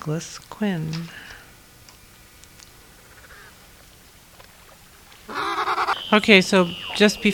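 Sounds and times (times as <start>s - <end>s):
speech: 0.0s - 1.3s, 6.1s - 7.3s
faint hissing background: 0.0s - 7.3s
Weddell seal call underwater via hydrophone in McMurdo Sound, Ross Sea, Antarctica: 1.6s - 7.3s.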